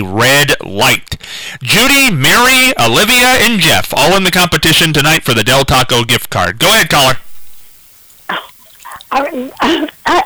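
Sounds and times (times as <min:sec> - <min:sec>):
speech: 0:00.0 - 0:07.2, 0:08.3 - 0:08.5, 0:09.1 - 0:10.2
person clearing throat: 0:08.3 - 0:10.2
person coughing: 0:08.3 - 0:10.2.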